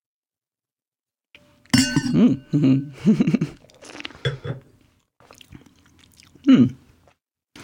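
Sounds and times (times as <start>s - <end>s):
wine glass clinking: 1.7s - 2.6s
slurping and swishing mouth sounds from sipping red wine: 3.5s - 4.4s, 5.2s - 7.6s.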